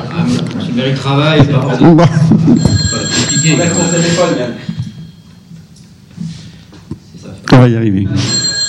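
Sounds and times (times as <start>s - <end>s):
speech: 0.2s - 4.8s, 7.5s - 8.4s
telephone ringing with a steady electronic tone: 2.4s - 5.5s, 8.1s - 8.6s.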